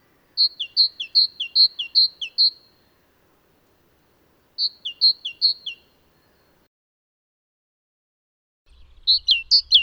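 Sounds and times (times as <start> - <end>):
great tit song: 0.0 - 6.6
speech: 0.5 - 1.1.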